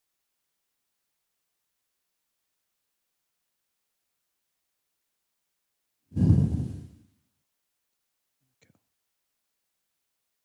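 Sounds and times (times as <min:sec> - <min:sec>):
deep breath drawn in: 0:06.2 - 0:07.0.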